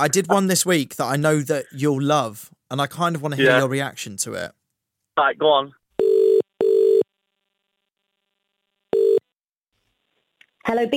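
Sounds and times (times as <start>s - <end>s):
speech: 0.0s - 4.6s, 5.2s - 5.8s, 10.6s - 10.9s
ringing tones of a telephone call being connected: 6.0s - 7.1s, 8.9s - 9.3s.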